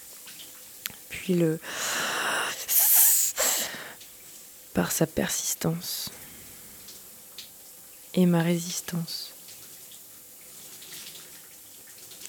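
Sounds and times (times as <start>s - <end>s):
warm shower water running: 0.0s - 12.2s
speech: 1.1s - 1.8s, 4.8s - 6.2s, 8.2s - 9.3s.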